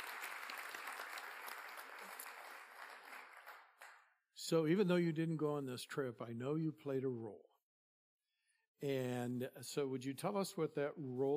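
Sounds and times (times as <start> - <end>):
crowd applauding at a missions gathering: 0.0 - 4.1
speech: 4.5 - 7.5, 8.8 - 11.3.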